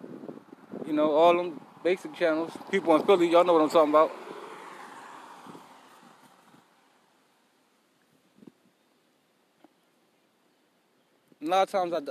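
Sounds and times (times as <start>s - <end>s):
vehicle rushing past: 0.0s - 7.4s
steady outdoor street traffic hum: 0.0s - 12.0s
speech: 0.9s - 4.2s, 11.5s - 12.0s.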